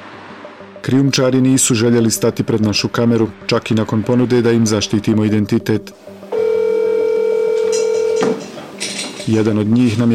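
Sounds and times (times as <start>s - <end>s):
speech: 0.8s - 6.2s, 9.3s - 10.1s
telephone ringback tone of a phone call: 6.3s - 8.4s.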